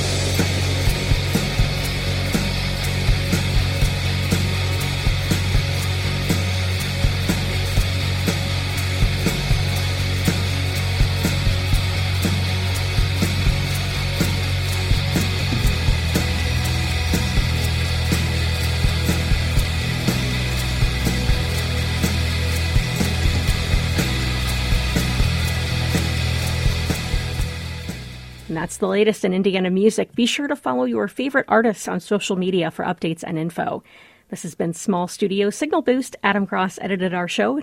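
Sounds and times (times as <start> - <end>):
loud dense wall of fuzzy distorted guitar drone: 0.0 - 28.8
driving evenly pulsing beat: 0.0 - 28.9
speech: 28.7 - 37.6.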